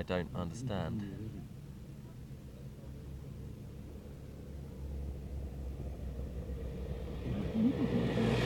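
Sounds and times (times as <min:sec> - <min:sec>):
speech: 0:00.0 - 0:01.2
photographers' motorbikes and team cars rumbling past at a bicycle race roadside: 0:03.7 - 0:08.4.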